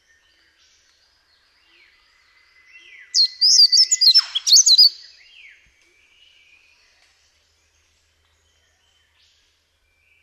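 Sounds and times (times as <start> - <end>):
yellow-throated scrubwren singing: 1.4 - 5.6.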